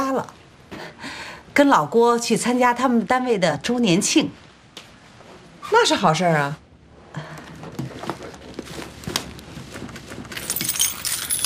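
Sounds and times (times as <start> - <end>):
speech: 0.2 - 0.4, 1.6 - 4.4, 5.7 - 7.4
bunch of house keys jangling as they are handed over: 10.4 - 11.4.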